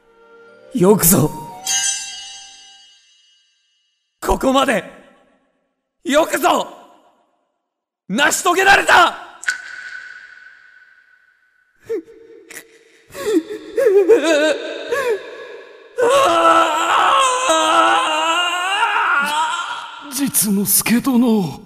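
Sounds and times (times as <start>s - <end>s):
speech: 0.7s - 1.8s, 4.4s - 5.0s, 6.0s - 6.8s, 8.1s - 9.3s, 20.4s - 21.6s
person weeping: 11.9s - 20.1s.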